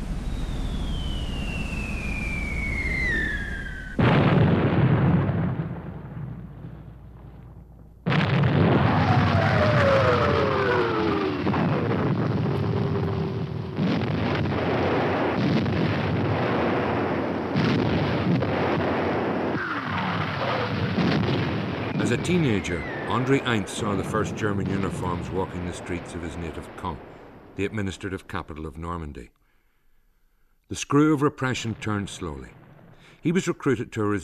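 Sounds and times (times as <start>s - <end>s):
whistling tones sliding downward in pitch: 0.0s - 4.4s, 8.9s - 13.6s, 21.7s - 27.6s
D-Day invasion bombardment with artillery explosions: 0.0s - 29.0s, 31.4s - 33.8s
speech: 22.2s - 29.4s, 30.7s - 32.6s, 33.2s - 34.2s.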